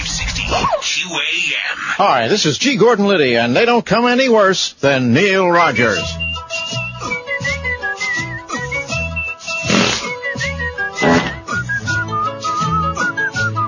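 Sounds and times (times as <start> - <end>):
speech: 0.5 - 6.3
instrumental backing with bass and rhythm: 5.8 - 13.6
person whistling a bright bouncy melody: 5.8 - 13.6.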